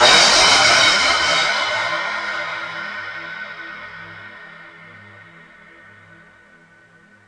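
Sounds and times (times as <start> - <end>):
drum kit cymbal: 0.0 - 7.2.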